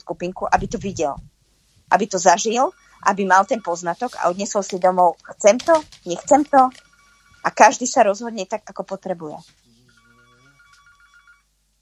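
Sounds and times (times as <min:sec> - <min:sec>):
speech: 0:00.0 - 0:01.3, 0:01.9 - 0:06.8, 0:07.4 - 0:09.6
telephone ringing with a warbling electronic tone: 0:02.1 - 0:08.2, 0:09.9 - 0:11.5.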